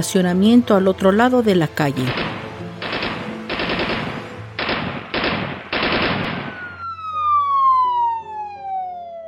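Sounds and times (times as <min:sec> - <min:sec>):
speech: 0:00.0 - 0:02.4
automatic gunfire bursts: 0:02.1 - 0:06.6
police siren wailing: 0:06.2 - 0:09.2.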